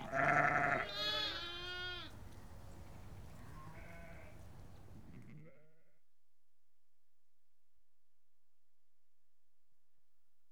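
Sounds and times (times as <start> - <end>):
sheep bleating: 0.0 - 2.2, 3.5 - 4.4.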